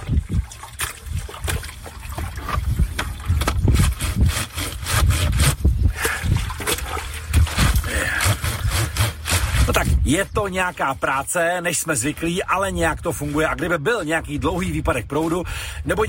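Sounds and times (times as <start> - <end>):
water splashes and trickles: 0.0 - 4.0, 5.9 - 8.0
wet fabric scrubbed on an old washboard: 0.8 - 11.3
speech: 10.1 - 16.0.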